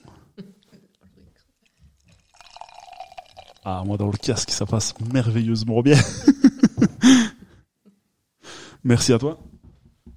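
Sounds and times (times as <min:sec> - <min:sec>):
faint drips: 0:00.9 - 0:05.7
beer pouring into a glass: 0:01.6 - 0:05.9
speech: 0:03.6 - 0:06.4, 0:07.0 - 0:07.3, 0:08.9 - 0:09.5
laughter: 0:05.9 - 0:07.4.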